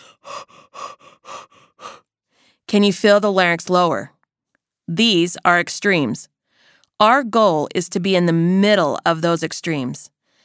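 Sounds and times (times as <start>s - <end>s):
person panting like a big dog: 0.0s - 2.6s
speech: 2.7s - 4.2s, 4.9s - 6.3s, 7.0s - 10.1s.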